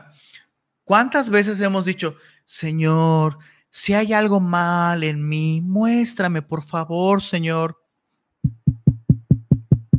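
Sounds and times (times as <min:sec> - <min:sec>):
speech: 0:00.2 - 0:07.8
sharp knocks on a door: 0:08.4 - 0:09.9.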